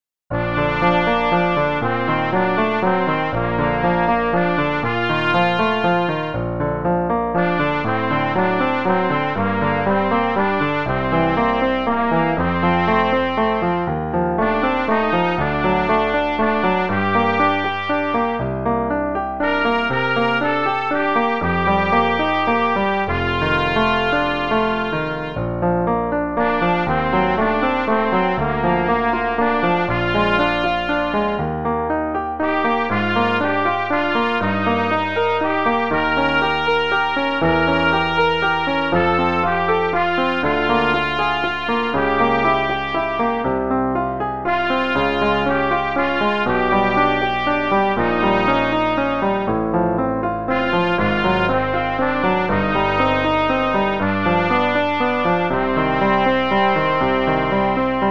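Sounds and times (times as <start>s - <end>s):
trumpet playing: 0.3s - 31.7s, 32.4s - 43.6s, 44.3s - 49.7s, 50.3s - 58.0s.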